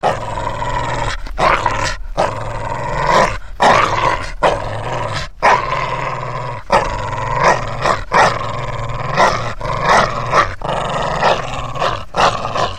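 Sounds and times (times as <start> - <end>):
dog growling: 0.0 - 12.7.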